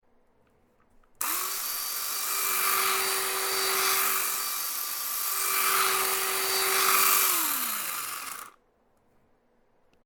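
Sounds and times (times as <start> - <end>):
chainsaw: 1.2 - 8.6.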